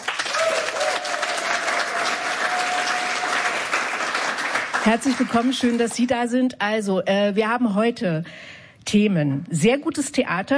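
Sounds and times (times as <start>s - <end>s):
studio audience at an evening talk show applauding: 0.0s - 6.0s
speech: 4.8s - 10.5s.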